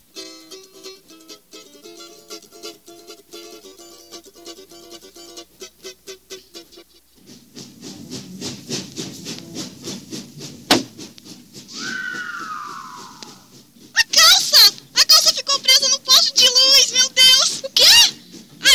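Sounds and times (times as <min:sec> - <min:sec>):
moving train with steady rhythmic clatter and tonal droning: 0:02.6 - 0:18.7
rushing wind noise of a moving train: 0:11.7 - 0:13.5.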